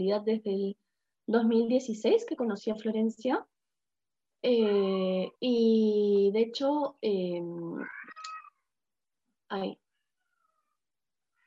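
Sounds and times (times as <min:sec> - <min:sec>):
speech: 0:00.0 - 0:03.5, 0:04.4 - 0:08.3, 0:09.5 - 0:09.8
pet cat meowing with a wavering tone: 0:07.8 - 0:08.6.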